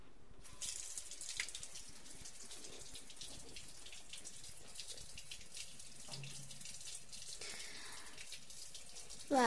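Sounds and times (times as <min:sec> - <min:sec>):
shower water running: 0:00.4 - 0:09.4.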